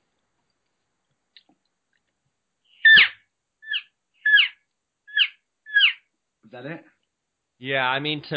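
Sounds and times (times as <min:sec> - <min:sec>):
high-pitched nasal elk call imitating an excited elk calf: 0:02.8 - 0:06.0
speech: 0:06.5 - 0:07.0, 0:07.6 - 0:08.3.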